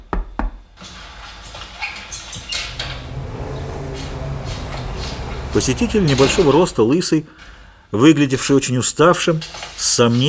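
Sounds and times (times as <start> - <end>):
knocking on a door: 0.0 - 0.8
broadband noise: 0.0 - 10.2
speech: 5.5 - 10.2.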